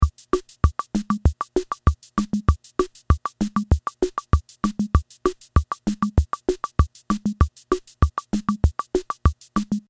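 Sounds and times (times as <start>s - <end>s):
Casiotone keyboard samba rhythm setting: 0.0s - 9.8s.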